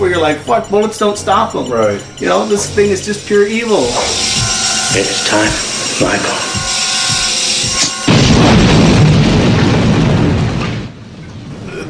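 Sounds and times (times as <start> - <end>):
tonal sounds: 0.0 - 11.5
speech: 0.2 - 4.3, 4.9 - 6.6
indoor film explosion with loud sustained rumbling roar: 8.0 - 11.8.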